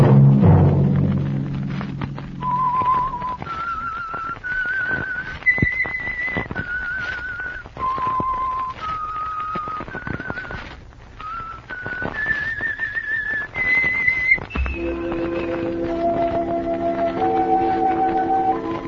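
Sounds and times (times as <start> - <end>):
low thumps: 0.0 - 5.2, 14.4 - 18.8
whistled tune with slow lilting melody: 2.4 - 10.6, 11.2 - 18.8.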